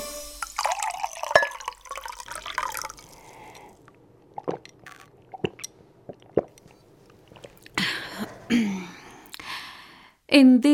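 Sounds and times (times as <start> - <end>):
cool water pouring into a copper mug: 0.4 - 7.7
copper mug clinking against a hard surface: 0.6 - 2.9
person swallowing: 2.5 - 7.9
speech: 10.3 - 10.7.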